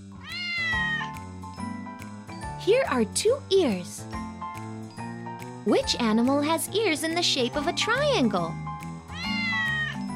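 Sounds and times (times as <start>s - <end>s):
cat meowing in a long drawn-out call: 0.2s - 1.2s, 9.1s - 10.1s
speech: 2.6s - 4.2s, 5.6s - 8.7s.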